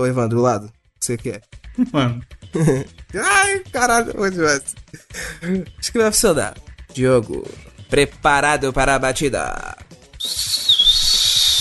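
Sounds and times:
speech: 0:00.0 - 0:10.6
laughter: 0:02.6 - 0:02.9
referee whistle sputtering, clogged with grass: 0:10.2 - 0:11.5.

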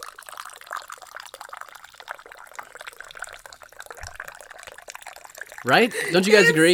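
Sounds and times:
coffee pouring into a cup: 0:00.0 - 0:06.7
speech: 0:05.6 - 0:06.7
laughter: 0:05.7 - 0:06.7.

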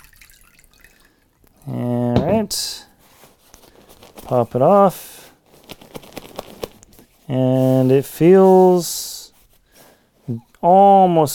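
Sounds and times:
water poured onto a puffy down sleeping bag with a Gore Windstop shell: 0:00.0 - 0:01.2
speech: 0:01.6 - 0:02.7, 0:04.3 - 0:05.1, 0:07.3 - 0:09.0, 0:10.3 - 0:11.3.

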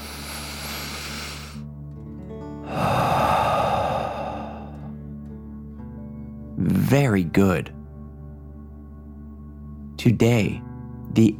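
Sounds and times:
deep breath in and out through the mouth: 0:00.0 - 0:01.7, 0:02.6 - 0:05.2
speech: 0:06.9 - 0:07.8, 0:10.0 - 0:11.3.

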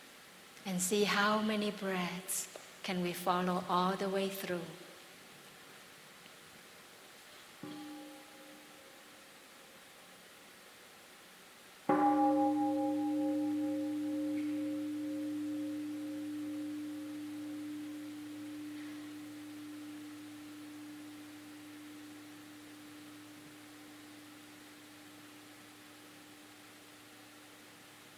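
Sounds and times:
speech: 0:00.6 - 0:04.9
meditation bell ringing: 0:07.7 - 0:08.8, 0:11.9 - 0:27.3.

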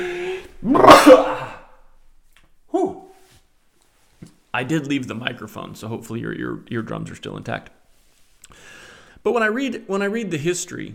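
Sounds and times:
speech: 0:00.0 - 0:01.3, 0:04.6 - 0:07.8, 0:08.6 - 0:10.9
person sneezing: 0:00.0 - 0:01.8.

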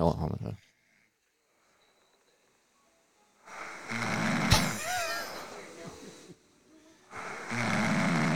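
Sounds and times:
woman snoring while asleep: 0:03.5 - 0:05.6, 0:07.1 - 0:08.3.

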